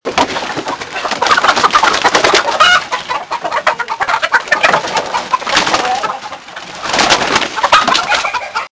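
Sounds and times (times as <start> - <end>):
hens leaving coop: 0.0 - 8.7.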